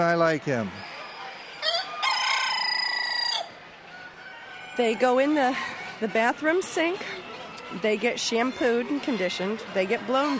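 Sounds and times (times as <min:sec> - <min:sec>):
speech: 0:00.0 - 0:00.9, 0:04.8 - 0:10.3
silver gray Dorking rooster crowing: 0:01.6 - 0:06.1.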